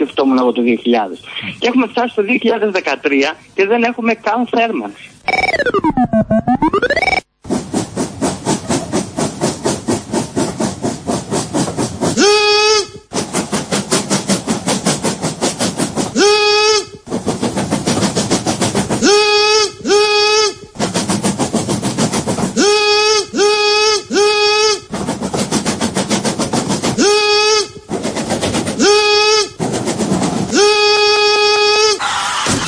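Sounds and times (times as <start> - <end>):
speech: 0.1 - 6.4
person imitating train chugging: 6.6 - 32.5
person imitating train whistle blasts: 12.2 - 13.1, 16.2 - 17.0, 19.0 - 20.8, 22.6 - 24.9, 27.0 - 27.8, 28.8 - 29.6, 30.5 - 32.0.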